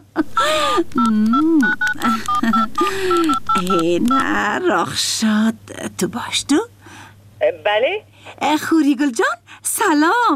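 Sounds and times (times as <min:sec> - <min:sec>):
speech: 0:00.2 - 0:06.7, 0:07.4 - 0:10.3
touch-tone telephone keypad beeps as a number is dialed: 0:00.9 - 0:04.6.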